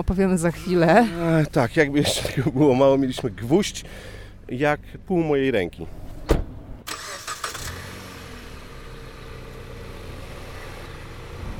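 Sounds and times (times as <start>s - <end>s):
speech: 0.0s - 6.0s
car engine cranking, starting and driving off: 0.0s - 11.5s
sharp thump: 6.1s - 6.6s.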